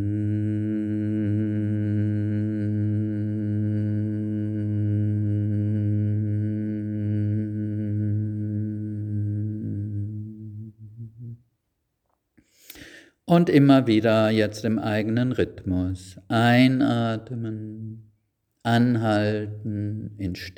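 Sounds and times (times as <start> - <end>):
person humming a low tone during a yoga breathing exercise: 0.0 - 11.4, 16.3 - 18.1, 18.7 - 20.5
speech: 13.3 - 17.8, 18.6 - 20.5.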